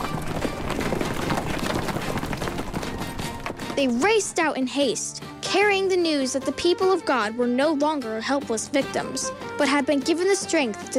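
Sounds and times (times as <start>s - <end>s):
horses galloping with riders: 0.0s - 4.4s
speech: 3.8s - 10.9s.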